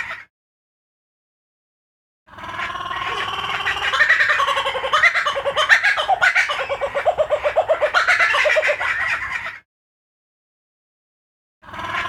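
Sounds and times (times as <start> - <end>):
kookaburra laughing call: 2.3 - 9.6, 11.7 - 12.0.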